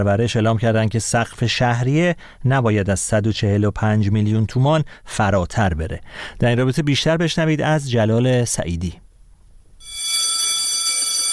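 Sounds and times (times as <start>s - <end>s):
speech: 0.0s - 9.0s
electric school bell ringing: 9.8s - 11.3s.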